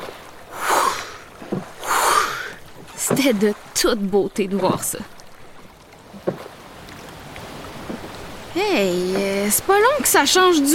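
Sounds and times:
canoe paddle splashes and soft knocks: 0:00.0 - 0:10.7
flowing river water under a gliding canoe: 0:00.0 - 0:10.7
speech: 0:03.1 - 0:05.2, 0:08.6 - 0:10.7.

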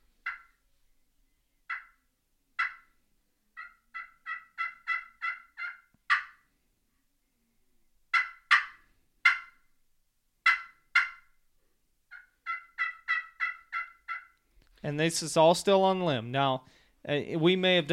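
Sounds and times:
turkey clucks and cuts on a hand turkey call: 0:00.2 - 0:00.6, 0:01.7 - 0:02.0, 0:02.6 - 0:02.9, 0:03.6 - 0:06.4, 0:08.1 - 0:09.6, 0:10.4 - 0:11.3, 0:12.1 - 0:14.4
speech: 0:14.8 - 0:17.9.

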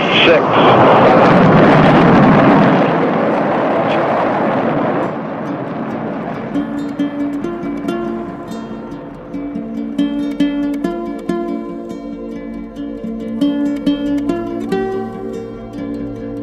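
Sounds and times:
rocket launch roar of a crewed mission to the Moon: 0:00.0 - 0:06.8
music: 0:06.3 - 0:16.4.

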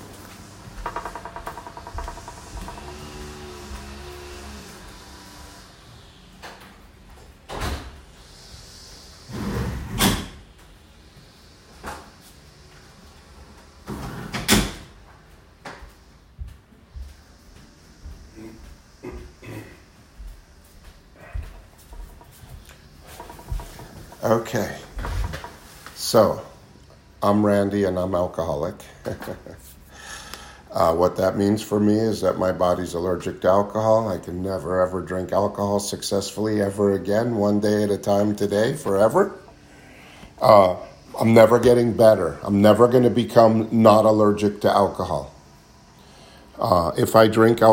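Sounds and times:
front door and windows being shut: 0:00.6 - 0:08.3, 0:09.3 - 0:10.5, 0:13.8 - 0:15.0
speech: 0:24.2 - 0:24.8, 0:26.1 - 0:26.5, 0:27.2 - 0:29.5, 0:30.8 - 0:39.4, 0:40.4 - 0:45.4, 0:46.6 - 0:47.7.

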